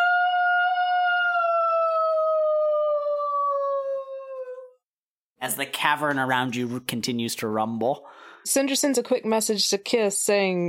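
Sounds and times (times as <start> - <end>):
person imitating a wolf howling: 0.0 - 4.8
speech: 5.4 - 10.6.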